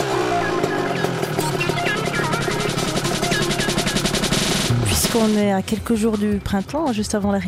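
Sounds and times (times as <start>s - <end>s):
inline three-cylinder motorcycle engine revving: 0.0s - 5.1s
speech: 5.2s - 7.4s.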